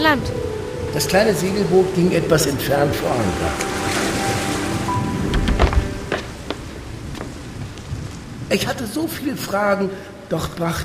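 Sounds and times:
speech: 0:00.0 - 0:04.0, 0:08.5 - 0:10.8
sea waves sloshing and splashing in a storm: 0:00.0 - 0:08.5
storm wind at sea: 0:00.0 - 0:09.4.

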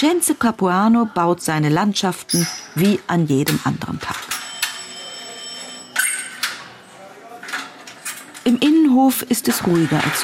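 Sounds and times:
speech: 0:00.0 - 0:04.4, 0:08.6 - 0:10.2
old telephone bell ringing on the first floor above a workshop courtyard: 0:04.3 - 0:06.0.

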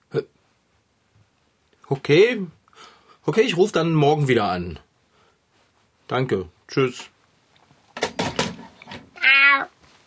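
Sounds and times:
speech: 0:00.1 - 0:00.3, 0:01.9 - 0:02.6, 0:03.2 - 0:04.8, 0:06.1 - 0:07.1
rustling and thumping: 0:07.8 - 0:09.2.

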